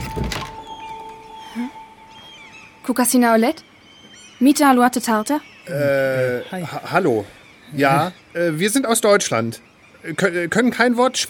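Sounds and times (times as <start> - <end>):
heavy door opening: 0.0 - 1.3
low hum: 0.0 - 4.8
speech: 2.9 - 3.7, 4.4 - 11.2.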